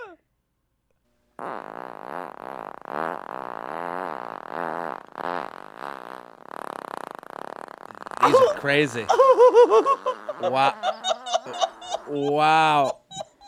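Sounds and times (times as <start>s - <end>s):
long loud sustained buzzing fart: 1.4s - 12.1s
laughter: 8.2s - 13.4s
speech: 8.3s - 11.0s, 12.1s - 13.0s.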